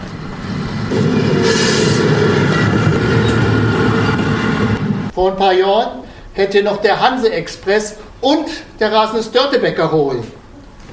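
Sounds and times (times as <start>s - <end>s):
train passing through without stopping: 0.0s - 5.2s
airy hiss: 0.7s - 2.5s
speech: 5.2s - 10.4s.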